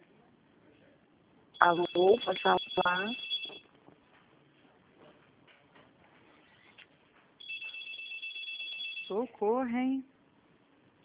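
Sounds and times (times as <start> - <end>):
speech: 1.6 - 3.3, 9.1 - 10.1
telephone ringing in the background: 1.6 - 3.7, 7.4 - 9.2.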